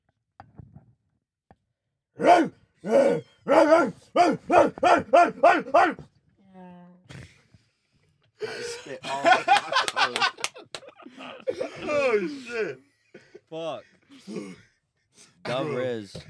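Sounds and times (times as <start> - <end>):
person imitating a dog barking: 2.2 - 6.0
laughter: 8.4 - 13.8.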